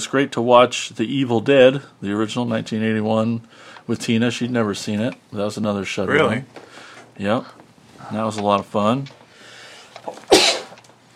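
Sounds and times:
speech: 0.0 - 9.2
brief intake of breath: 6.6 - 7.2, 9.2 - 10.8
single sharp sneeze: 10.1 - 10.8.

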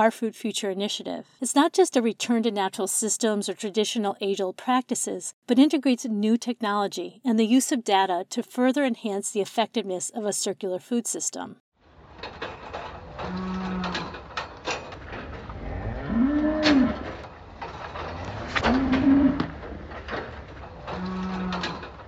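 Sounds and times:
speech: 0.0 - 13.6
farm noise: 12.1 - 22.0
cows mooing on a family-owned farm with robotic milking: 13.2 - 14.2, 15.4 - 17.2, 18.0 - 19.6, 20.8 - 21.8.

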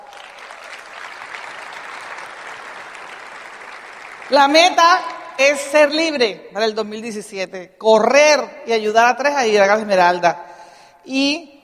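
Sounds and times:
crowd applause: 0.0 - 5.4
speech: 4.3 - 11.5.

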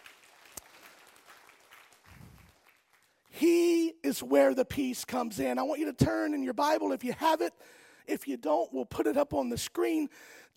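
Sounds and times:
church sermon audience clapping: 0.0 - 3.4
speech: 3.4 - 10.5.

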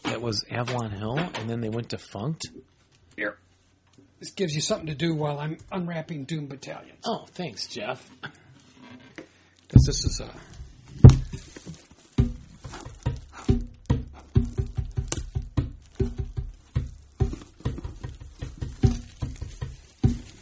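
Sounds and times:
speech: 0.2 - 3.4, 4.2 - 8.4, 9.7 - 11.1
hand drumming on bongos: 9.8 - 20.4.

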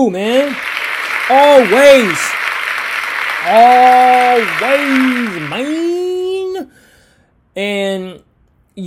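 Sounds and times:
speech: 0.0 - 0.7, 1.3 - 2.4, 3.4 - 6.0, 7.6 - 8.8
dense steady clapping: 0.0 - 6.3.

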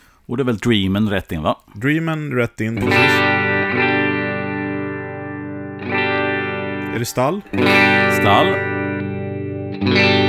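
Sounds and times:
speech: 0.3 - 4.0, 6.9 - 8.8, 9.8 - 10.2
clean Telecaster-style replica electric guitar strummed chords: 2.8 - 10.2.

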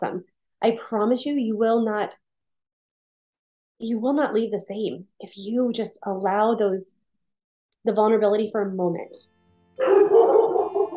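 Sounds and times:
speech: 0.0 - 2.2, 3.8 - 7.0, 7.8 - 10.2
dogs barking excitedly: 9.8 - 10.9.

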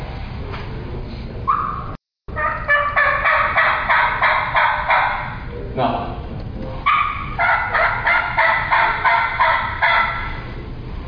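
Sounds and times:
turkey call imitating a hen's yelp: 1.5 - 5.5, 6.8 - 10.5.

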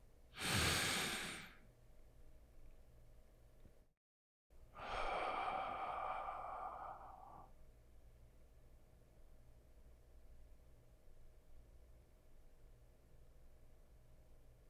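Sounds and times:
breathy inhale: 0.4 - 1.6, 4.8 - 7.6
long airy exhale: 0.4 - 1.6, 4.8 - 7.6.

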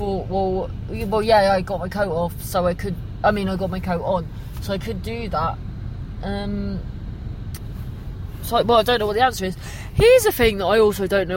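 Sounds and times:
speech: 0.0 - 6.9, 8.4 - 11.3
car engine idling: 0.0 - 11.3.

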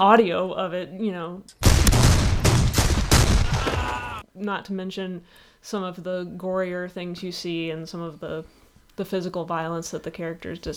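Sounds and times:
speech: 0.0 - 1.6, 3.6 - 10.7
loud forceful gunfire from a film: 1.6 - 4.2.

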